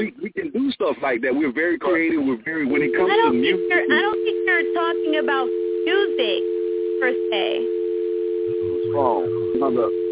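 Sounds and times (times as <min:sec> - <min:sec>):
speech: 0:00.8 - 0:07.8, 0:08.6 - 0:10.0
steady telephone dial tone: 0:02.8 - 0:08.6.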